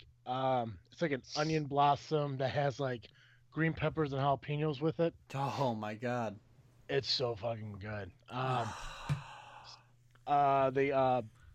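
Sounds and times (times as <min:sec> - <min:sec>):
speech: 0:00.2 - 0:11.4
heavy breathy exhaling: 0:08.4 - 0:09.9.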